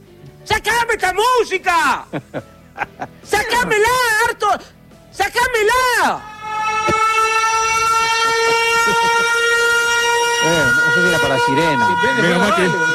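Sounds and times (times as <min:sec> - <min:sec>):
speech: 0:00.4 - 0:07.0, 0:10.4 - 0:12.9
laughter: 0:02.0 - 0:03.8
voice wailing in imitation of a siren: 0:06.0 - 0:12.9
loud steady horn-like alarm tone: 0:06.1 - 0:12.9.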